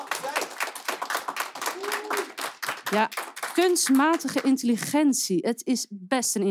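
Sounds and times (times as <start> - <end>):
small audience applause: 0.0 - 4.6
faint voices and whoops: 1.6 - 2.4
speech: 2.9 - 6.4.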